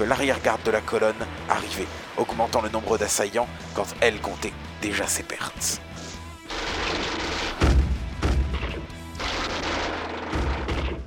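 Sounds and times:
speech: 0.0s - 5.9s
distant explosions: 6.5s - 11.0s.

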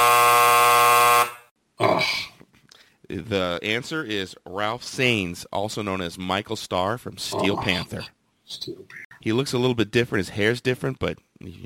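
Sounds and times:
loud harsh game show buzzer: 0.0s - 1.5s
short rough vocal groan: 1.8s - 2.4s, 7.3s - 7.8s
speech: 3.1s - 11.6s.

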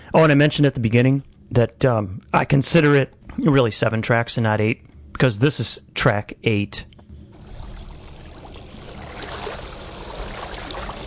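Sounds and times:
speech: 0.1s - 6.9s
water washing like a stream or lapping water: 7.3s - 11.0s.

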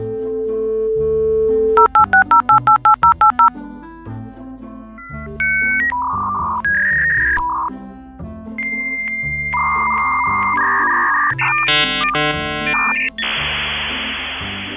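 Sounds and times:
touch-tone beeps of a 2400-baud dial-up modem dialing: 0.4s - 3.5s, 5.0s - 7.7s, 8.6s - 13.4s
2400-baud dial-up modem connection handshake tones, warbles and screeches: 1.7s - 3.5s, 5.0s - 7.7s, 8.6s - 13.4s
hiss of static from dial-up modem: 11.1s - 14.7s.

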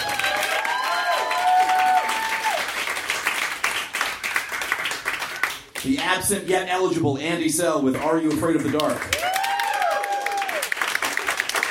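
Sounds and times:
crowd cheering and whooping: 0.0s - 2.8s, 9.1s - 11.0s
crowd applauding: 0.0s - 6.0s, 8.3s - 11.6s
speech: 5.8s - 9.3s.

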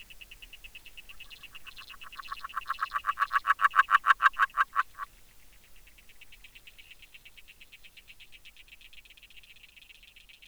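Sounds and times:
agile frog Rana dalmatina calling with pulsed croaks on hydrophone: 1.1s - 5.1s.

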